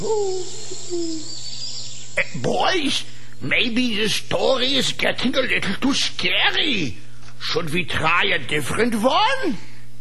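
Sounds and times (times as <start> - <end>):
speech: 0.0 - 1.5, 2.2 - 9.7
owl hooting: 0.0 - 3.7
hiss and hum: 0.0 - 9.9.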